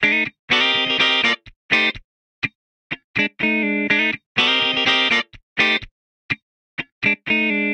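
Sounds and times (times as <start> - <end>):
funk guitar in C major: 0.0 - 7.7.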